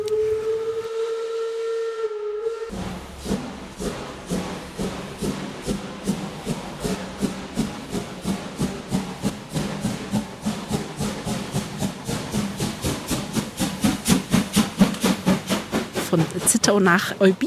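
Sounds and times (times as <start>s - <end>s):
narrow-gauge steam locomotive sustained whistle: 0.0s - 3.8s
narrow-gauge steam locomotive chuffing exhaust beats: 0.0s - 17.4s
speech: 16.1s - 17.4s.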